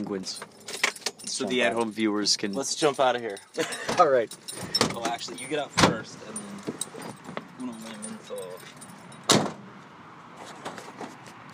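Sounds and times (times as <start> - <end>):
speech: 0.0 - 0.6, 1.3 - 6.8
car keys jangling: 0.2 - 9.3
sharp clack of a car being locked: 3.9 - 7.4, 9.2 - 9.6.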